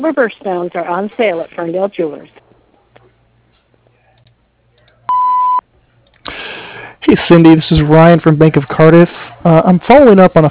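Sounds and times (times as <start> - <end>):
speech: 0.0 - 2.4, 7.1 - 10.4
answering machine electronic beep: 5.1 - 5.6.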